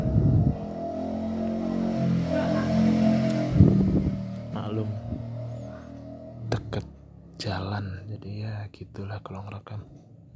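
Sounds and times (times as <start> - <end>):
motorcycle engine revving: 0.0 - 7.3
speech: 7.4 - 10.0.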